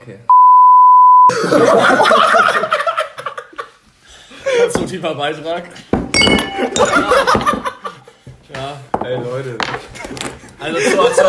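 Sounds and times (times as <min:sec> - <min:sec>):
speech: 0:00.0 - 0:00.3, 0:01.3 - 0:02.4, 0:04.9 - 0:07.4, 0:09.1 - 0:11.2
several people laughing: 0:01.3 - 0:04.7, 0:06.6 - 0:08.2, 0:10.6 - 0:11.2
glass beer bottle tipping over with a clink and clatter: 0:06.0 - 0:07.6.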